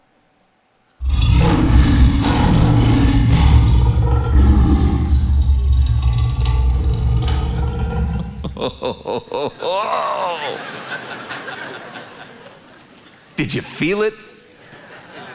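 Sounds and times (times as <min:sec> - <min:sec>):
lion roaring: 0:01.0 - 0:10.4
laughter: 0:08.2 - 0:13.0, 0:14.6 - 0:15.3
speech: 0:13.4 - 0:14.3.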